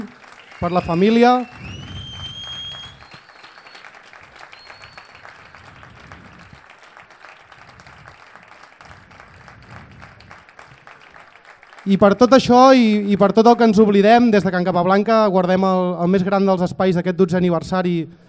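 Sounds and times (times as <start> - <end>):
audience applause at a commemorative event: 0.0 - 13.1
speech: 0.1 - 1.6, 11.9 - 18.2.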